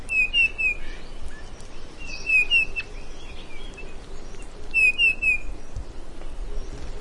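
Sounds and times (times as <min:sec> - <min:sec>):
low steady background hiss: 0:00.0 - 0:06.9
Grey-headed bullfinch calling with soft whistled notes: 0:00.1 - 0:03.4, 0:04.7 - 0:05.5.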